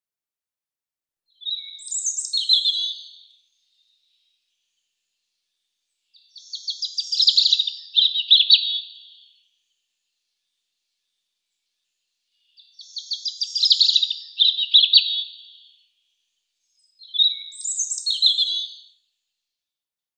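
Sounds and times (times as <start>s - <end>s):
European robin Erithacus rubecula: 1.3s - 4.3s, 6.1s - 9.4s, 12.3s - 15.9s, 16.7s - 19.0s.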